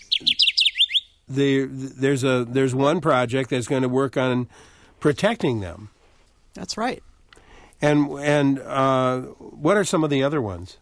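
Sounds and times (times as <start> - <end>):
Kirtland's Warbler song: 0.0 - 1.3
speech: 1.3 - 6.0, 6.6 - 7.1, 7.8 - 10.7.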